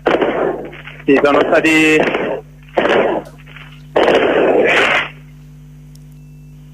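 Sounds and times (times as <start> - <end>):
fireworks crackling and popping at New Year's midnight: 0.0 - 5.2
speech: 1.1 - 2.2.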